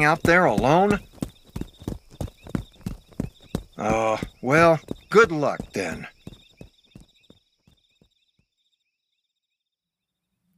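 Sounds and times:
speech: 0:00.0 - 0:01.1, 0:03.8 - 0:06.1
heavy footsteps stomping through a forest: 0:00.0 - 0:07.9
crickets or insects chirping: 0:00.0 - 0:09.2.

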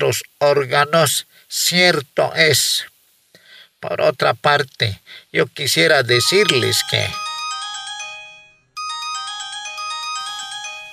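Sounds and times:
speech: 0:00.0 - 0:02.9, 0:03.8 - 0:07.2
phone ringtone playing a bright electronic melody: 0:06.2 - 0:10.9.

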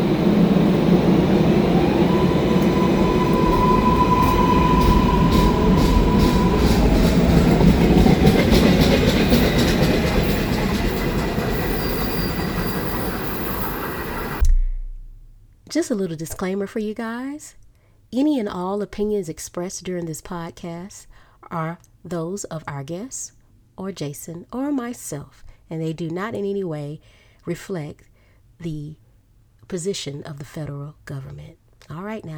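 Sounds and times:
high squeal of train: 0:00.0 - 0:14.4
train rolling along the rails: 0:00.0 - 0:14.4
speech: 0:15.8 - 0:29.0, 0:29.7 - 0:32.3.

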